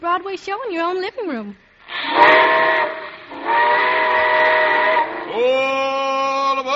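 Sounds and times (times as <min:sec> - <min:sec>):
speech: 0:00.0 - 0:04.2
steady hiss of steam from steam train: 0:01.8 - 0:06.4
loud steam train whistle as train departs: 0:01.9 - 0:05.5.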